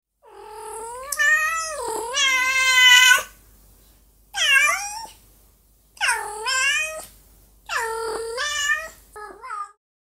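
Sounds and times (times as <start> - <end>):
cat meowing: 0.3 - 3.3, 4.4 - 5.2, 6.0 - 7.1, 7.7 - 9.8.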